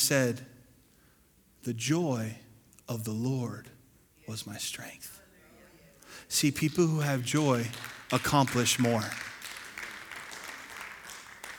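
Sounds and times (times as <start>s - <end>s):
speech: 0.1s - 0.5s, 1.6s - 5.2s, 6.3s - 9.3s
light polite applause from an audience: 6.4s - 11.5s.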